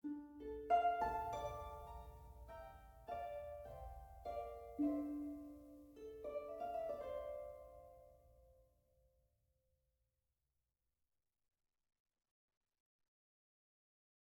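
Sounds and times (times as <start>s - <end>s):
harp from a game rip: 0.0s - 8.6s.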